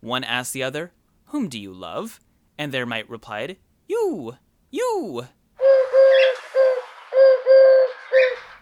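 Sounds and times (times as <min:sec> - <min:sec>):
speech: 0:00.0 - 0:05.4
wood pigeon cooing in a tree: 0:05.6 - 0:08.6.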